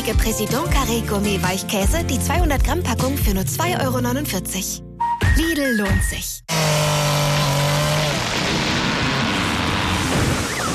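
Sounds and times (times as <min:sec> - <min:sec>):
speech: 0:00.0 - 0:06.9
crunching rumbling debris and metal: 0:08.0 - 0:10.7
tree crashing onto a car: 0:08.0 - 0:10.7.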